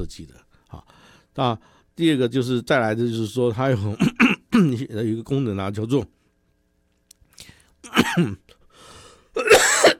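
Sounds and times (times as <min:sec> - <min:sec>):
speech: 0:00.0 - 0:06.2, 0:07.4 - 0:08.5
person with a cold coughing: 0:04.0 - 0:04.7, 0:07.8 - 0:08.4, 0:09.4 - 0:09.9.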